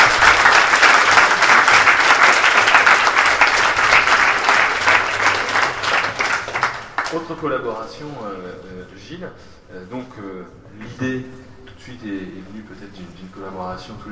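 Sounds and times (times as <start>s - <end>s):
audience applause in a room full of people: 0.0s - 7.3s
speech: 7.4s - 14.1s.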